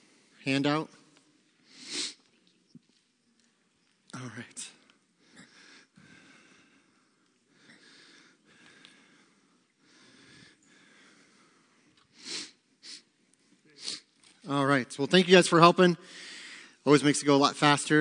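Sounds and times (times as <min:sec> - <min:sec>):
speech: 0:00.4 - 0:01.0, 0:04.2 - 0:04.8, 0:14.5 - 0:17.9
nose sniffing: 0:01.7 - 0:02.2, 0:12.2 - 0:13.1, 0:13.8 - 0:14.1.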